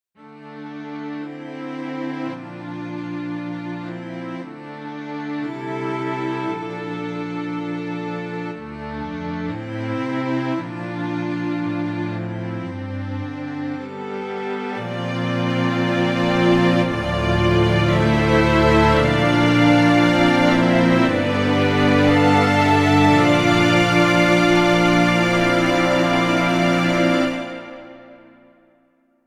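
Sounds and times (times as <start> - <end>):
a few strings: 0.2 - 28.8.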